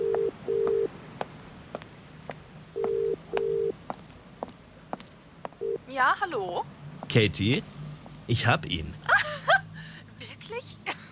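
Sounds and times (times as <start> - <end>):
phone ringing tone heard through the earpiece: 0.0 - 0.9, 2.8 - 3.8, 5.6 - 5.8
faint street noise: 0.0 - 11.1
speech: 6.0 - 9.3.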